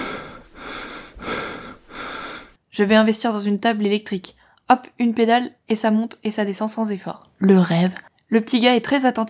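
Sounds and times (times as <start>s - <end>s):
person panting heavily from brutal physical effort: 0.0s - 2.6s
speech: 2.8s - 9.2s.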